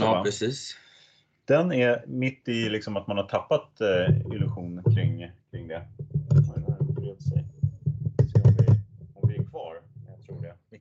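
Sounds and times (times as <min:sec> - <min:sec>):
speech: 0:00.1 - 0:00.8, 0:01.5 - 0:06.1
microphone slipping and being readjusted: 0:03.9 - 0:10.6.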